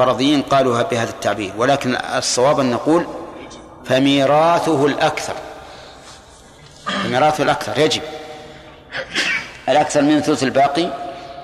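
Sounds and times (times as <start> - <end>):
speech: 0.0 - 3.2, 3.8 - 5.5, 7.0 - 8.1, 8.9 - 11.0
sneeze: 9.1 - 9.5.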